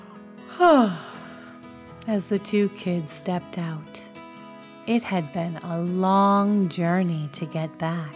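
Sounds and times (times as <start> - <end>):
person imitating a yawn: 0.5 - 1.4
speech: 0.6 - 1.1, 2.1 - 4.1, 4.9 - 8.1.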